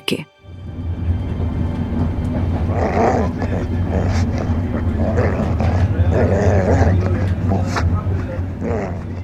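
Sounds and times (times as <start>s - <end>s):
speech: 0.1s - 0.3s
steady drone of the moving train: 0.4s - 9.2s
dog growling in a train compartment: 2.4s - 9.2s.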